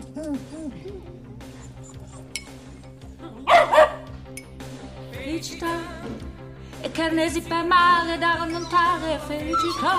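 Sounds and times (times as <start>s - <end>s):
speech: 0.2s - 1.6s, 5.4s - 9.9s
dog barking: 3.5s - 4.1s.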